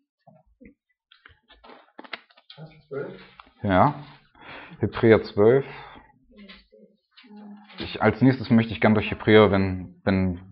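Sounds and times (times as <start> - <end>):
thin pages of a Bible being flipped: 1.1 - 4.2
speech: 2.6 - 4.2, 4.8 - 5.9, 7.9 - 10.5.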